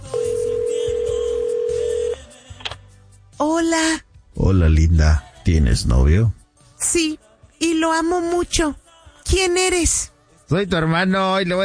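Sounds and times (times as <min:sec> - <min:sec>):
electronic telephone ring tone: 0:00.0 - 0:02.2
speech: 0:03.6 - 0:11.6.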